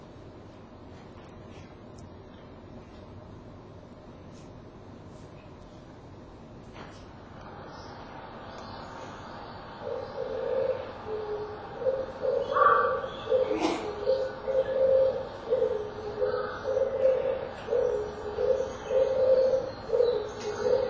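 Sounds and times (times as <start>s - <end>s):
Oriental turtle dove singing low hollow cooing notes: 8.4s - 20.8s.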